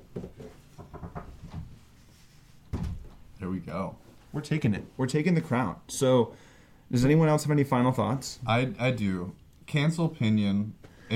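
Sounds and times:
dull knocking on wood: 0.1s - 1.7s
speech: 3.4s - 11.1s.

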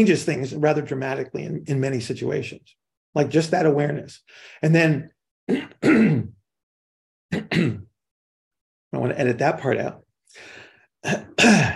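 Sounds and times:
speech: 0.0s - 6.4s, 7.3s - 7.9s, 8.9s - 11.7s
person clearing phlegm from the throat: 5.5s - 6.4s, 7.3s - 8.0s, 11.0s - 11.7s.

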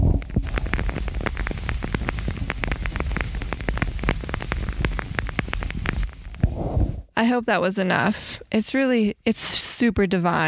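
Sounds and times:
wooden candle wick crackling: 0.4s - 6.6s
speech: 7.2s - 10.4s.

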